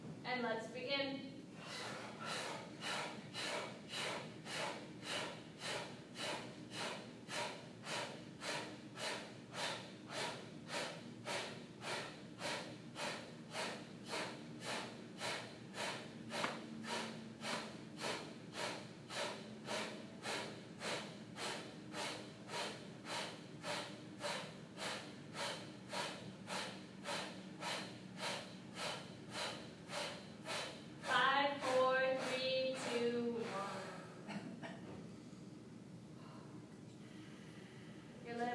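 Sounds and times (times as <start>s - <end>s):
speech: 0.3s - 2.5s
rapid forceful breath-of-fire exhalations in kapalabhati practice: 1.6s - 34.3s.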